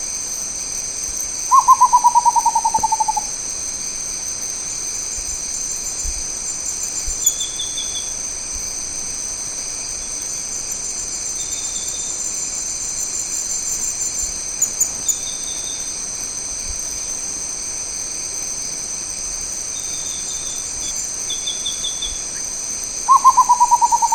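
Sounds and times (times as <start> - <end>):
rufous potoo calling: 1.5 - 3.3, 21.5 - 24.1.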